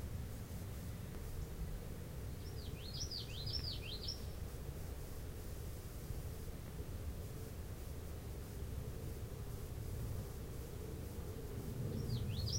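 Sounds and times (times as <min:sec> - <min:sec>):
low-pitched background noise: 0:00.0 - 0:12.5
common yellowthroat singing: 0:02.4 - 0:04.4, 0:12.0 - 0:12.5.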